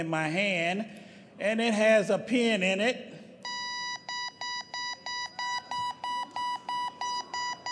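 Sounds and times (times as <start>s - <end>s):
speech: 0.0s - 3.1s
high electronic beeps from the beeping module inside a 16-inch softball: 3.5s - 7.7s.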